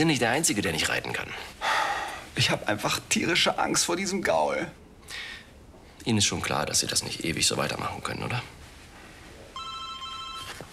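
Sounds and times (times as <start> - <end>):
speech: 0.0 - 1.7, 2.4 - 5.3, 6.0 - 8.6
telephone ringing with an electronic tone: 9.6 - 10.7.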